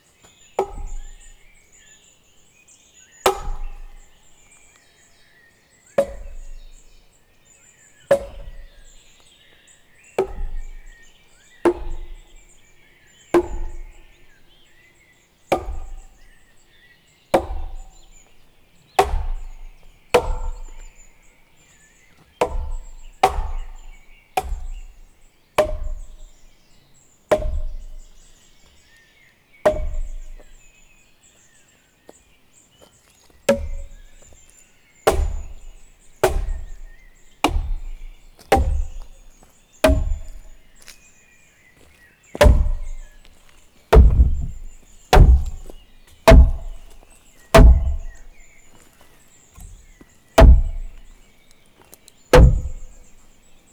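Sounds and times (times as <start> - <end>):
mallet striking logs: 0.3 - 1.6, 3.3 - 4.5, 6.0 - 7.0, 8.1 - 9.3, 10.2 - 12.7, 13.4 - 14.5, 15.5 - 16.5, 17.3 - 21.3, 21.9 - 26.6, 27.3 - 28.7, 29.6 - 30.7, 33.4 - 41.0, 42.4 - 48.7, 49.6 - 51.2, 52.3 - 53.2.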